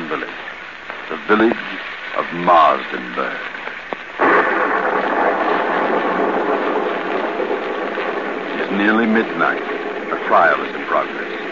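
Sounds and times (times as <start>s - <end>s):
heavy rainfall in a thunderstorm: 0.0s - 11.5s
speech: 1.3s - 3.6s, 8.8s - 11.4s
sudden loud thunder burst: 4.2s - 11.5s.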